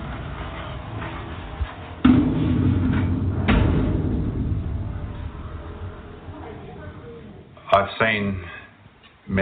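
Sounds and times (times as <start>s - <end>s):
steady low rumble of noise: 0.0s - 7.6s
front door banging shut: 2.0s - 5.3s
speech: 8.0s - 8.6s.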